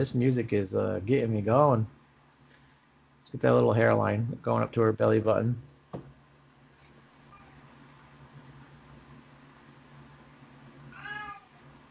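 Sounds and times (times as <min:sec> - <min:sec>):
speech: 0:00.0 - 0:02.0, 0:03.3 - 0:06.1
low hum: 0:00.0 - 0:11.8
cat meowing: 0:10.9 - 0:11.6.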